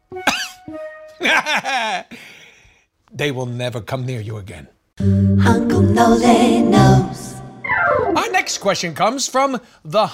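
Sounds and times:
harsh throaty coughing: 0:00.3 - 0:00.6
speech: 0:00.7 - 0:02.3, 0:03.2 - 0:07.3, 0:08.5 - 0:10.1
laughter: 0:01.2 - 0:02.1.

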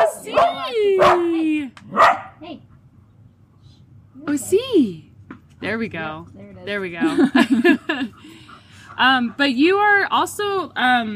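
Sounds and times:
dog barking: 0:00.0 - 0:02.4
speech: 0:04.4 - 0:08.4, 0:09.0 - 0:11.1
laughter: 0:07.0 - 0:08.3.

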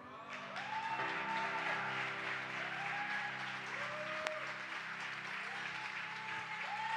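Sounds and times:
audience applause from a large crowd: 0:00.3 - 0:06.9.

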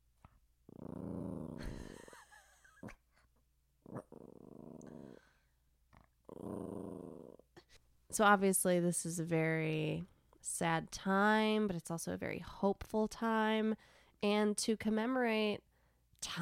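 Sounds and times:
dog growling and grumbling: 0:00.6 - 0:03.1, 0:03.8 - 0:07.6
speech: 0:08.1 - 0:16.4.

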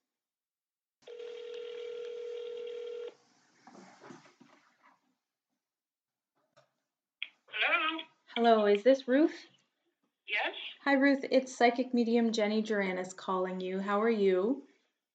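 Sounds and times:
steady electronic phone tone: 0:01.0 - 0:03.1
speech: 0:08.4 - 0:09.5, 0:10.3 - 0:14.7.

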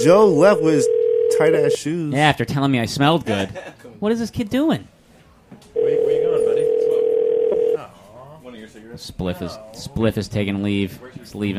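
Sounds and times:
phone line ringing tone, unanswered: 0:00.0 - 0:01.8, 0:05.8 - 0:07.8
speech: 0:00.0 - 0:04.9, 0:09.0 - 0:11.5.

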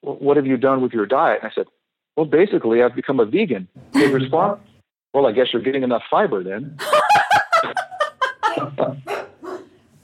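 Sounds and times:
speech: 0:00.1 - 0:07.8, 0:08.6 - 0:09.2
laughter: 0:06.8 - 0:09.1
dog yipping and barking: 0:09.1 - 0:09.8.

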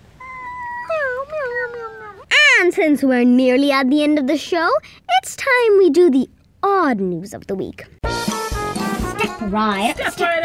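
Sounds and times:
cat meowing long and drawn-out: 0:00.1 - 0:02.4
speech: 0:02.7 - 0:08.0, 0:09.4 - 0:10.4.

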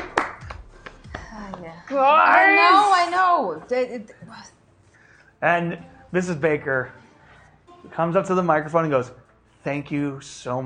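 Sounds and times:
hand claps: 0:00.0 - 0:01.7
speech: 0:01.6 - 0:04.6, 0:05.4 - 0:07.0, 0:07.8 - 0:10.6.

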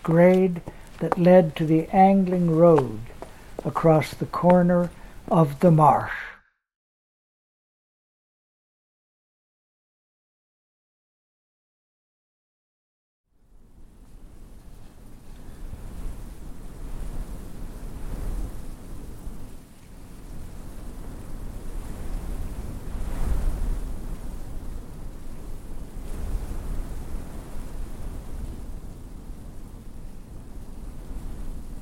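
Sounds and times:
wind sweeping across open prairie: 0:00.0 - 0:06.2, 0:14.2 - 0:31.8
speech: 0:00.0 - 0:06.3.

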